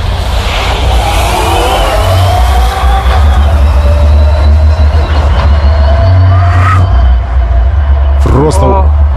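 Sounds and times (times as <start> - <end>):
heavy semi-truck tractor engine accelerating at high revs: 0.0 - 9.1
heavy truck tires roaring on the road: 0.0 - 9.1.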